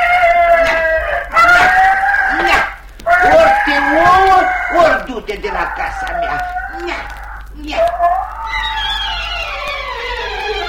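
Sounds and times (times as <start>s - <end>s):
chicken squawking and clucking as it is beaten with a basket: 0.0s - 10.6s.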